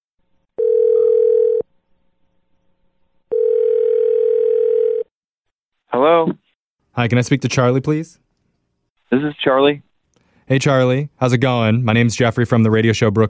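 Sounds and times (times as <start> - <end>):
long steady telephone ringing tones on the line: 0.6 - 1.7, 3.3 - 5.1
speech: 7.0 - 8.2, 9.1 - 9.9, 10.5 - 13.2.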